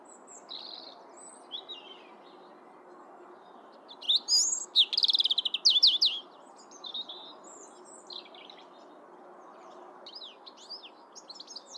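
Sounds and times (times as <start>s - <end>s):
European robin Erithacus rubecula singing: 4.0s - 6.2s.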